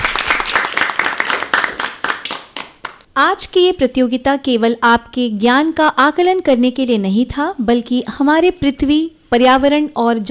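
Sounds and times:
audience applause at a competition: 0.0s - 3.0s
speech: 3.2s - 10.2s.

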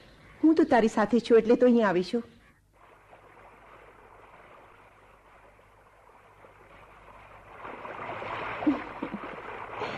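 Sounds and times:
speech: 0.4s - 2.4s
river water flowing: 2.7s - 9.9s.

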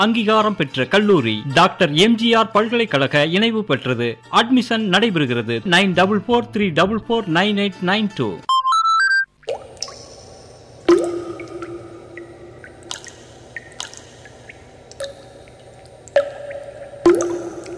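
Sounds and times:
speech: 0.0s - 8.5s
brief electronic beeps: 8.5s - 9.3s
water dripping: 9.3s - 17.7s
steady low hum: 9.6s - 17.7s.

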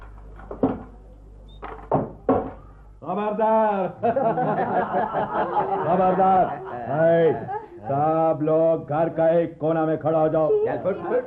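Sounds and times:
door being opened with wooden clunks and rattles: 1.6s - 2.6s
speech: 3.1s - 11.2s
laughter: 4.0s - 7.8s.

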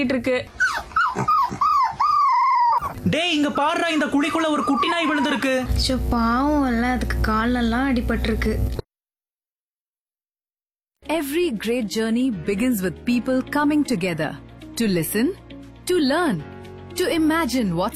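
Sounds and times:
speech: 0.0s - 0.6s, 3.0s - 8.8s, 11.2s - 17.9s
dog whining and crying in high-pitched whimpers: 0.5s - 3.0s, 4.2s - 5.7s.

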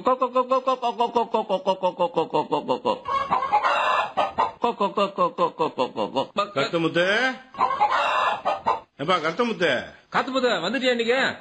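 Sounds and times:
people talking: 0.0s - 3.1s, 4.6s - 7.5s, 9.0s - 11.3s
country chickens clucking while being fed grain: 2.4s - 4.7s, 7.5s - 9.0s.

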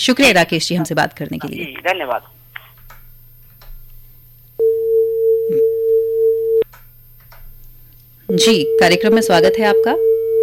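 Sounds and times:
speech: 0.0s - 2.4s, 8.3s - 10.1s
faint low hum: 0.0s - 10.4s
sharp clicks: 2.5s - 4.0s
telephone line tone after a caller's line cuts out: 4.6s - 6.7s, 8.3s - 10.4s.

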